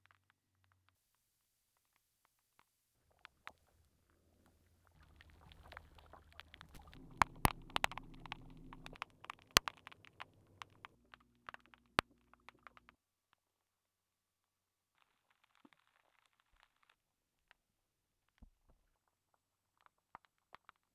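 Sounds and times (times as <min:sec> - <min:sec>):
composite noise: 0:05.0 - 0:11.0.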